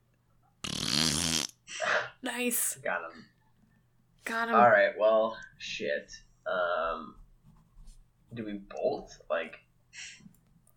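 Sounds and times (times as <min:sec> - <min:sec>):
person blowing a buzzing raspberry mimicking a fart: 0:00.6 - 0:01.6
speech: 0:02.4 - 0:03.4, 0:04.3 - 0:07.2, 0:08.3 - 0:10.3.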